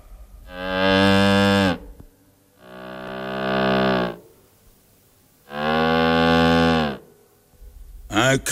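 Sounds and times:
instrument imitating a cow's low mooing: 0.4s - 1.9s, 2.6s - 4.3s, 5.4s - 7.1s.

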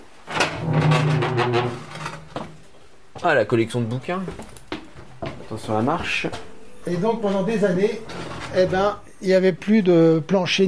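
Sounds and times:
old door swinging shut with a groaning wooden creak: 0.3s - 2.5s, 8.0s - 9.0s
speech: 3.2s - 4.6s, 5.5s - 10.6s.

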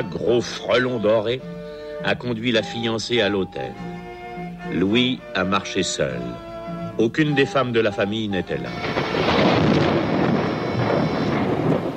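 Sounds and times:
speech: 0.0s - 4.0s, 4.6s - 9.2s
thunderclap rumbling: 8.7s - 11.9s.

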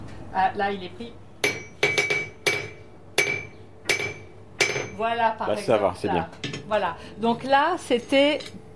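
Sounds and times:
speech: 0.4s - 1.2s, 5.0s - 8.6s
hammer striking a blacksmith's anvil flattening iron to horseshoe size: 1.4s - 5.0s.

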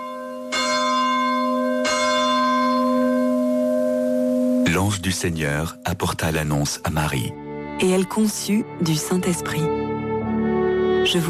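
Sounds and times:
church bells ringing for the Angelus: 0.0s - 6.8s
speech: 4.7s - 10.0s, 11.0s - 11.2s.

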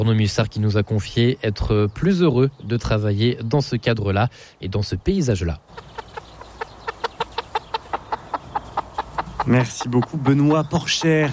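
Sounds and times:
speech: 0.0s - 6.0s, 9.5s - 11.3s
chicken clucking: 5.6s - 11.3s.

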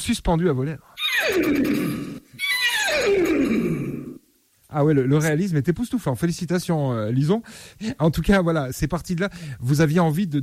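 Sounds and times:
speech: 0.0s - 2.1s, 4.7s - 10.4s
person imitating a horse whinny: 1.0s - 4.2s.

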